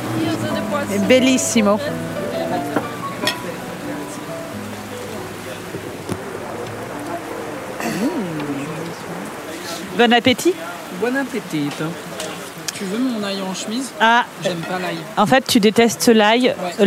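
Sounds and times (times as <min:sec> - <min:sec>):
murmuring voices: 0:00.0 - 0:13.0
steady rain: 0:00.0 - 0:16.8
speech: 0:00.8 - 0:02.7, 0:10.0 - 0:12.1, 0:12.8 - 0:16.8.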